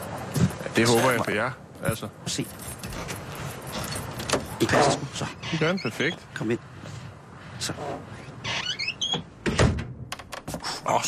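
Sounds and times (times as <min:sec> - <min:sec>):
speech: 0:00.8 - 0:03.1, 0:04.6 - 0:06.7, 0:07.6 - 0:08.2, 0:10.9 - 0:11.0
old unoiled door creaking open: 0:02.9 - 0:06.2, 0:07.8 - 0:10.7.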